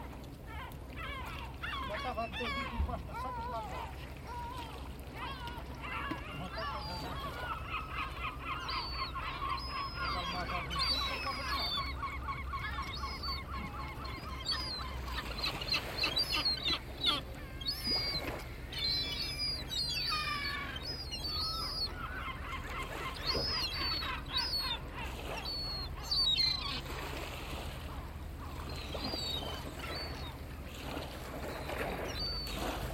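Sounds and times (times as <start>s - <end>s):
Atlantic seagulls calling at a fishing port: 0.0s - 32.9s
voices at a fishing port: 0.5s - 26.2s.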